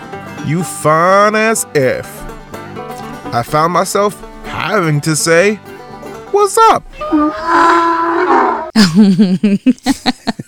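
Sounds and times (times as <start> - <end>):
speech: 0.4 - 2.3, 3.3 - 5.7, 6.3 - 8.0, 8.8 - 10.4
donkey braying loudly: 6.9 - 8.8
laughter: 8.8 - 10.4.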